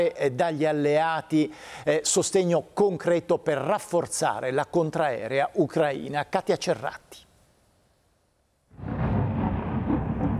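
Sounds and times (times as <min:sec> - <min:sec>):
speech: 0:00.0 - 0:07.2
heavy sustained low rumble echoing: 0:08.7 - 0:10.3
loud explosion booming over a city: 0:08.7 - 0:10.3.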